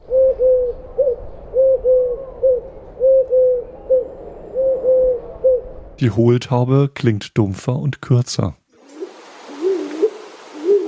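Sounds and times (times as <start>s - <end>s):
Eurasian Collared Dove cooing three-note phrases: 0.0s - 5.7s, 8.8s - 10.8s
speech: 6.0s - 8.6s.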